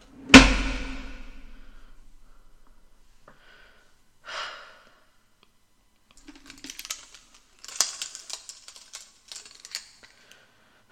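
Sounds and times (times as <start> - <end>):
door shutting with a loud thud: 0.1 - 1.7
metallic clicks and rattles of a lock being turned: 6.2 - 10.1.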